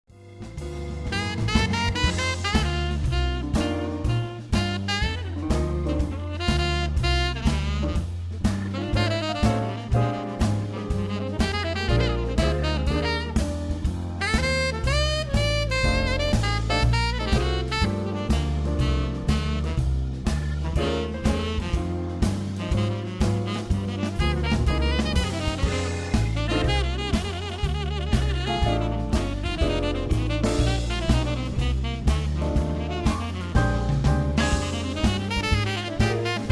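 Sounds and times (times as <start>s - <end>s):
jazz standards: 0.1s - 36.4s.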